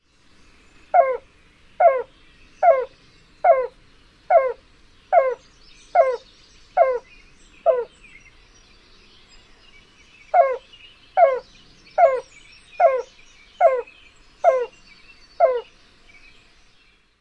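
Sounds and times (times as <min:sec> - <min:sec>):
Yellow-billed Cuckoo coo song: 0:00.8 - 0:08.2, 0:10.2 - 0:15.7.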